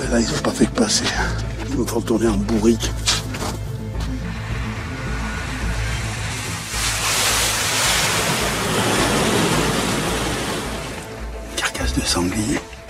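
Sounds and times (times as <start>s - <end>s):
speech: 0.1s - 3.1s, 12.1s - 12.7s
skis sliding loudly over snow: 3.1s - 11.1s
low rumbling: 3.2s - 11.5s.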